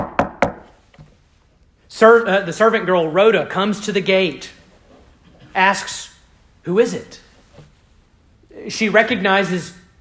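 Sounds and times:
knocking on the wooden door of a house: 0.0s - 0.6s
speech: 1.9s - 4.6s, 5.6s - 7.2s, 8.6s - 9.8s.

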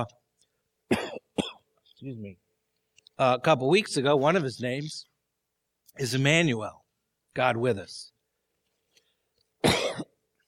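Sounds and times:
speech: 0.0s - 0.2s, 2.0s - 2.4s, 3.2s - 5.1s, 6.0s - 6.8s, 7.4s - 8.1s
harsh cough from throat irritation: 0.9s - 1.7s, 9.6s - 10.2s
throat clearing: 0.9s - 1.7s, 9.6s - 10.2s.

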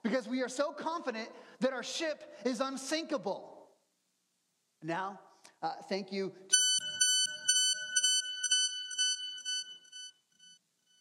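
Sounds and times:
speech: 0.1s - 3.6s, 4.8s - 6.6s
shrill electronic alarm beeping: 6.5s - 10.9s.

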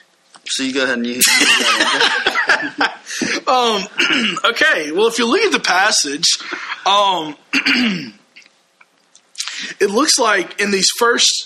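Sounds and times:
speech: 0.5s - 8.2s, 9.8s - 11.4s
laughter: 1.2s - 3.9s, 6.4s - 6.9s
person coughing: 3.2s - 4.5s, 7.5s - 8.2s.

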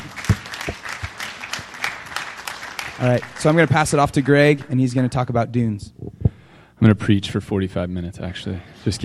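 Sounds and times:
scattered applause from a small audience: 0.0s - 4.8s
speech: 3.0s - 6.0s, 6.8s - 9.0s.

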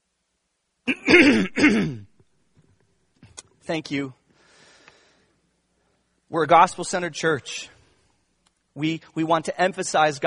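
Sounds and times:
person clearing their throat: 0.9s - 2.1s
person coughing: 0.9s - 2.1s
speech: 3.7s - 4.2s, 6.3s - 7.8s, 8.8s - 10.2s.

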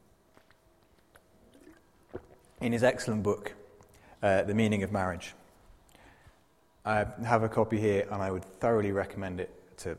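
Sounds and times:
person sipping a drink of water: 0.3s - 2.6s
speech: 2.6s - 3.6s, 4.2s - 5.4s, 6.8s - 9.9s.

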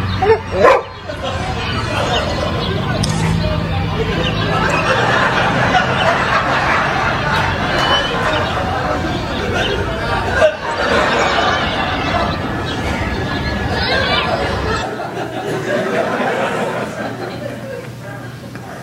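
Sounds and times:
dense noisy murmur: 0.0s - 18.8s
laughter: 0.0s - 18.8s
dog barking and yipping: 0.2s - 1.0s.

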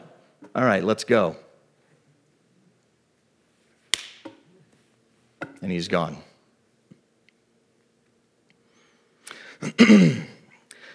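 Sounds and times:
speech: 0.5s - 1.4s, 5.6s - 6.3s, 9.7s - 10.3s
hand slap on a mosquito: 3.9s - 4.4s.

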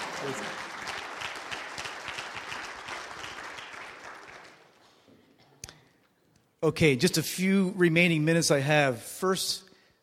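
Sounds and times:
audience applauding at a talk: 0.0s - 4.8s
speech: 0.2s - 0.7s, 6.6s - 9.6s.

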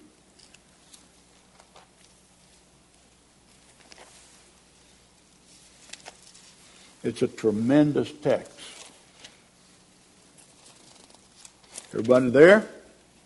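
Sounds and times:
Bible pages being turned: 3.4s - 6.9s, 8.3s - 9.4s, 10.4s - 12.4s
speech: 7.0s - 8.7s, 12.0s - 12.8s.

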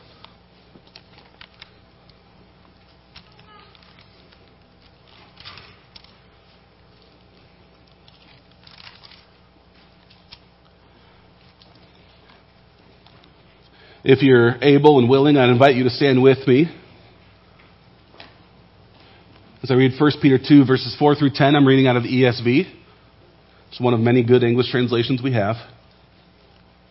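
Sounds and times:
audience turning Bible pages: 0.0s - 13.5s
speech: 14.0s - 16.8s, 19.7s - 22.8s, 23.7s - 25.8s.

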